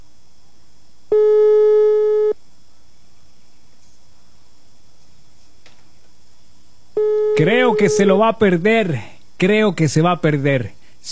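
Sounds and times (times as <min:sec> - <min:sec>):
electronic telephone ringing tone of a call to a cell phone: 0:01.1 - 0:02.4, 0:07.0 - 0:08.1
speech: 0:07.4 - 0:11.1.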